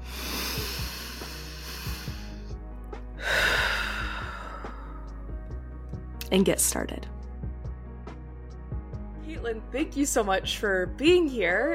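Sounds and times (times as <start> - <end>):
deep breath: 0.0 - 2.6, 3.2 - 5.2
speech: 6.3 - 7.1, 9.4 - 11.7.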